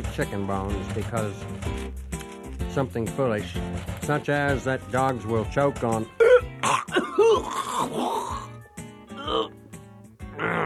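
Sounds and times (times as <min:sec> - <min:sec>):
speech: 0:00.2 - 0:02.1, 0:02.8 - 0:06.2, 0:07.4 - 0:08.4
throat clearing with rough gravelly rasps: 0:06.2 - 0:08.6, 0:09.2 - 0:09.6.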